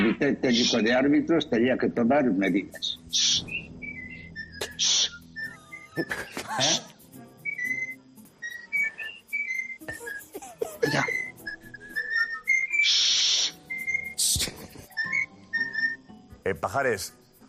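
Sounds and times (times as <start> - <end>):
parrot squawking: 0.0 - 0.8, 2.8 - 3.6, 10.0 - 11.4, 12.0 - 14.2
speech: 0.1 - 3.6, 6.0 - 6.9, 16.5 - 17.4
parrot whistling a tune-like series of notes: 2.8 - 16.1.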